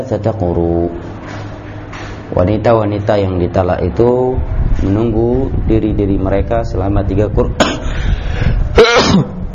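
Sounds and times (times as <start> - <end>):
speech: 0.0 - 1.2, 2.3 - 7.7
person sneezing: 8.8 - 9.4.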